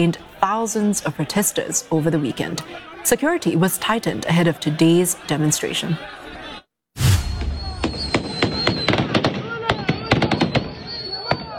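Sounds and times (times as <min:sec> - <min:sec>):
speech: 0:00.0 - 0:06.2
laughter: 0:00.0 - 0:06.6
crowd noise: 0:00.0 - 0:11.5
police warning shots fired at protesters in Pakistan: 0:07.0 - 0:11.5.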